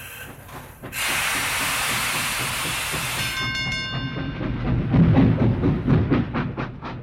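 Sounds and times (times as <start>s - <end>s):
steam train releasing hiss of steam: 0.0s - 3.5s
heavy rhythmic steam train chuffing: 0.0s - 7.0s.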